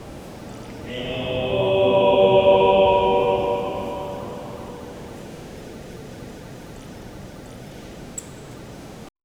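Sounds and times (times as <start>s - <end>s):
big crowd of people in a cathedral: 0.8s - 5.4s.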